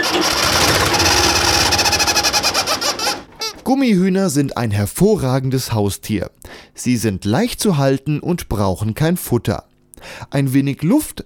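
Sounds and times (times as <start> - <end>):
1970s tractor engine running through rough exhaust pipe: 0.0 - 3.6
speech: 3.7 - 11.2.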